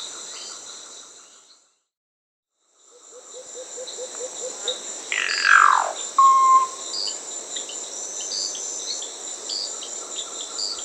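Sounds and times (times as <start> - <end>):
Solitary cacique calls in Peru: 3.8 - 7.1
steady high insect trilling in Peru: 5.1 - 7.2.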